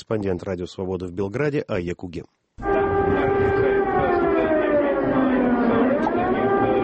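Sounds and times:
speech: 0:00.0 - 0:02.7
air raid siren wailing: 0:02.6 - 0:06.8
low murmur of a crowd outdoors: 0:02.6 - 0:06.8.

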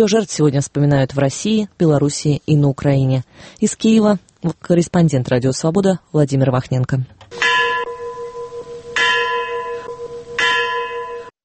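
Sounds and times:
speech: 0:00.0 - 0:07.3
church bell tolling at the Chernobyl heroes memorial mound in Kyiv: 0:07.3 - 0:11.3.

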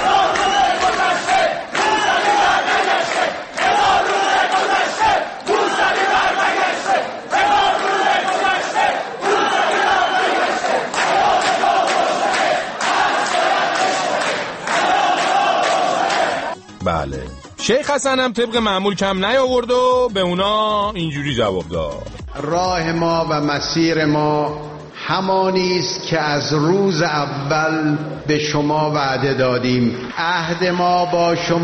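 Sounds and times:
students at a medical sciences university chanting slogans in unison: 0:00.0 - 0:16.6
speech: 0:17.0 - 0:31.6.

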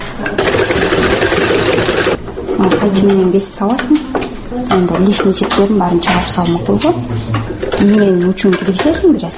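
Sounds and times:
speech: 0:00.2 - 0:00.5, 0:02.6 - 0:09.3
hand-turned sewing machine clattering and whirring: 0:00.3 - 0:02.8.

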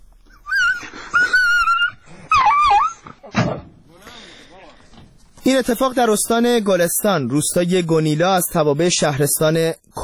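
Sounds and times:
dog yelping and whimpering in pain: 0:00.4 - 0:03.2
speech: 0:05.5 - 0:10.0.

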